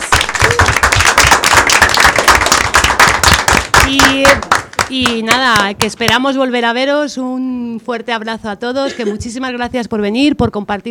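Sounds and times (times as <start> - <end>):
audience applause at the close of an event: 0.0 - 4.9
speech: 3.9 - 10.8.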